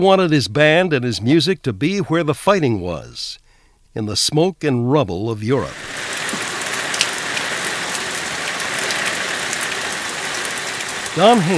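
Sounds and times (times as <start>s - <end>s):
speech: 0.0s - 6.0s, 11.2s - 11.5s
steady rain pattering on a surface: 5.6s - 11.5s.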